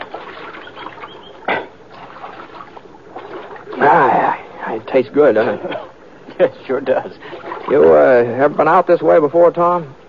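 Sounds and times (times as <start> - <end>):
gulps and sloshes drinking from stream: 0.0 - 4.6, 7.2 - 8.2
creek water splashing and lapping: 0.0 - 5.7, 6.4 - 8.8
speech: 3.8 - 10.0.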